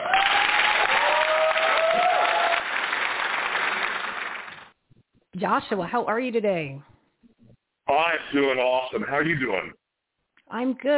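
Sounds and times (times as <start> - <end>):
whoops and cheers: 0.0 - 3.0
crowd applauding loudly: 0.0 - 4.8
speech: 5.4 - 6.9, 7.9 - 9.8, 10.5 - 10.9.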